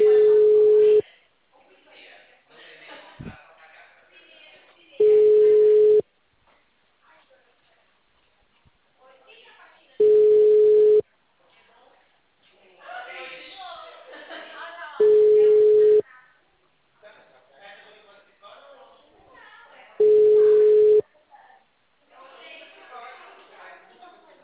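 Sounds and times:
telephone tone while placing a phone call: 0:00.0 - 0:01.0, 0:05.0 - 0:06.0, 0:10.0 - 0:11.0, 0:15.0 - 0:16.0, 0:20.0 - 0:21.0
people talking: 0:00.0 - 0:06.0, 0:09.0 - 0:16.4, 0:17.0 - 0:24.4.

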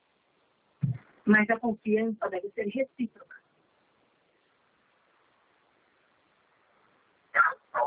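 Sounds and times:
speech: 0:01.3 - 0:03.4
search and rescue dog barking: 0:07.4 - 0:07.8.

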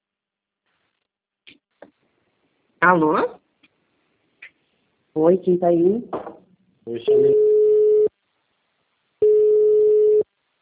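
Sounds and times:
speech: 0:02.8 - 0:03.4, 0:05.2 - 0:06.2, 0:06.9 - 0:07.4
telephone busy signal after a dropped call: 0:07.1 - 0:08.1, 0:09.2 - 0:10.2.

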